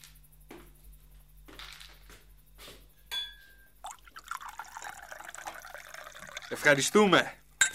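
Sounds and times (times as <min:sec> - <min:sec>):
glasses clinking: 0:03.1 - 0:06.9, 0:07.6 - 0:07.7
ouzo being poured into glasses: 0:03.8 - 0:07.7
speech: 0:06.5 - 0:07.4.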